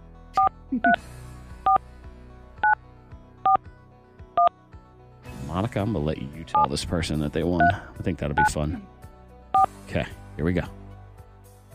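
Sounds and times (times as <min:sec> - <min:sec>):
phone keypad tones beeping on live radio: 0:00.4 - 0:01.0, 0:08.4 - 0:08.6
speech: 0:00.7 - 0:01.2, 0:05.6 - 0:09.0, 0:09.6 - 0:10.8.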